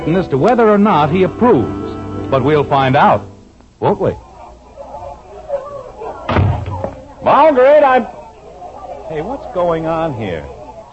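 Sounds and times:
speech: 0:00.0 - 0:04.2, 0:07.2 - 0:08.2, 0:09.1 - 0:10.6
faint murmur: 0:00.0 - 0:10.9
front door of a white frame house opening and shutting: 0:06.2 - 0:07.0.

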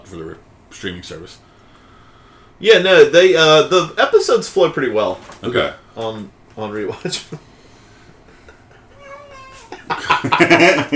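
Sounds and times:
speech: 0:00.1 - 0:01.5, 0:02.6 - 0:07.5, 0:10.4 - 0:10.9
female cat meowing and yowling: 0:09.0 - 0:09.8
laughter: 0:09.7 - 0:10.9.

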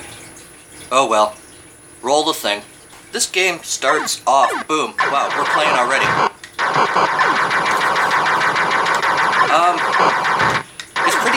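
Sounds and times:
speech: 0:00.9 - 0:01.4, 0:02.0 - 0:07.4
enemy ships firing electronic shots in a shooter video game: 0:03.9 - 0:11.3.

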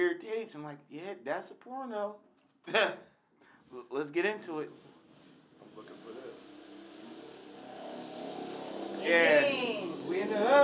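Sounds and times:
speech: 0:00.0 - 0:03.1, 0:03.7 - 0:04.9, 0:05.6 - 0:06.5, 0:09.0 - 0:10.6
voice imitating a motorcycle roaring past: 0:07.9 - 0:10.6.

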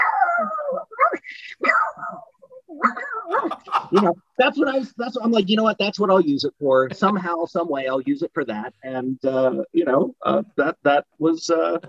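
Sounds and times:
human voice imitating a pug barking: 0:00.0 - 0:04.0
speech: 0:03.9 - 0:11.8.

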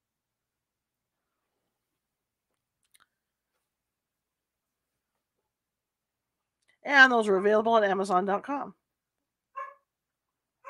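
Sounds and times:
speech: 0:06.8 - 0:08.8
dog barking: 0:09.6 - 0:09.9.

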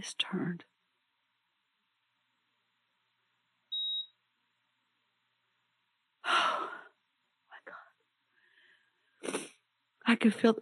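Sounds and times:
speech: 0:00.0 - 0:00.7, 0:10.1 - 0:10.5
faint hiss: 0:00.0 - 0:10.5
short high-pitched electronic beep from a monitor: 0:03.7 - 0:04.2.

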